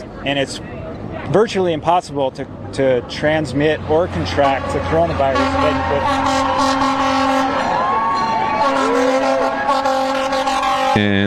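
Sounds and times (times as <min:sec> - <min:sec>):
rumbling traffic noise: 0:00.0 - 0:11.2
speech: 0:00.2 - 0:06.9, 0:11.0 - 0:11.2
passing fire engine siren wailing: 0:04.2 - 0:11.0
steady horn-like tones: 0:04.2 - 0:11.2.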